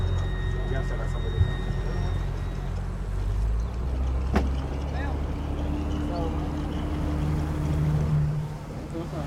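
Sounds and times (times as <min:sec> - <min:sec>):
low motorboat engine drone: 0:00.0 - 0:09.2
motorboat wake and water washing: 0:00.0 - 0:09.2.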